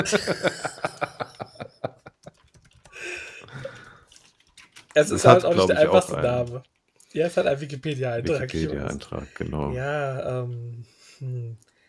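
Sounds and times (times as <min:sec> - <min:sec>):
speech: 0:00.0 - 0:00.9, 0:05.0 - 0:11.7
laughter: 0:00.0 - 0:02.3
typing on a computer keyboard: 0:02.2 - 0:05.0.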